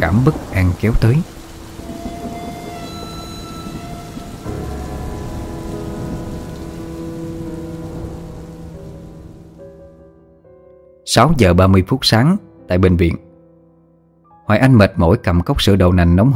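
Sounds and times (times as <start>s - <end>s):
speech: 0.0s - 1.4s, 11.1s - 13.2s, 14.5s - 16.3s
heavy rain pouring outside: 0.0s - 9.8s.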